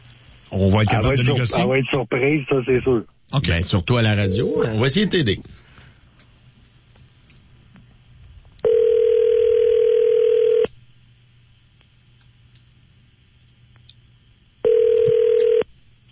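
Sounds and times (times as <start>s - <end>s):
speech: 0.5s - 5.6s
flat buzzing telephone ring tones of an outgoing call: 8.6s - 10.7s, 14.6s - 15.6s.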